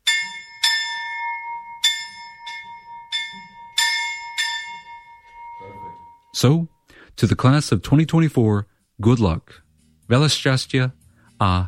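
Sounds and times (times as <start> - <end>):
school bell rung by hand: 0.0 - 6.6
speech: 6.4 - 11.6.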